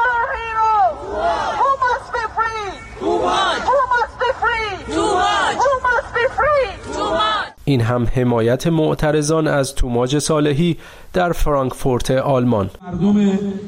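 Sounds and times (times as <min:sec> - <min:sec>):
protest crowd chanting a name: 0:00.8 - 0:07.6
speech: 0:07.7 - 0:13.6.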